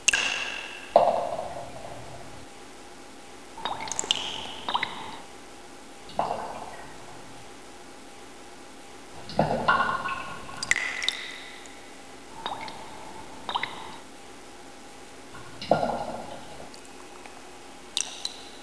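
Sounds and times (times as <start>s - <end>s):
water dripping in a cave: 0.0s - 2.2s, 3.6s - 5.4s, 6.0s - 7.4s, 9.1s - 14.1s, 15.2s - 18.6s.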